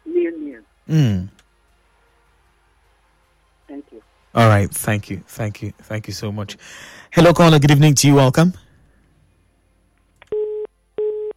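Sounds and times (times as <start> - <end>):
speech: 0.9 - 1.4, 4.4 - 8.6
busy tone beeps after a call drops on a phone-in line: 10.3 - 11.3.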